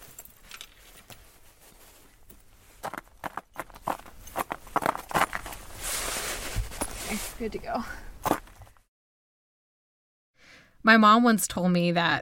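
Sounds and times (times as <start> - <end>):
footsteps on a nature preserve trail: 0.0 - 7.5, 8.2 - 8.8
metal micro spikes on boots jingling: 0.0 - 7.6
speech: 7.4 - 8.1, 10.9 - 12.1.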